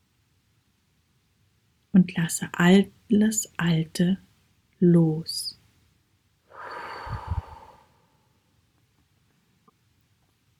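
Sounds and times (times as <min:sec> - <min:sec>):
speech: 0:02.0 - 0:05.6
person breathing in deeply during a guided breathing meditation: 0:06.5 - 0:08.1.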